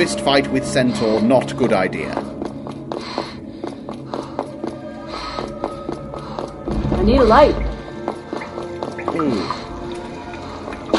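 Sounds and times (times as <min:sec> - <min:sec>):
speech: 0:00.0 - 0:02.4, 0:07.0 - 0:07.6, 0:09.2 - 0:09.6
water dripping in a dark cave with hollow plink: 0:05.7 - 0:10.9.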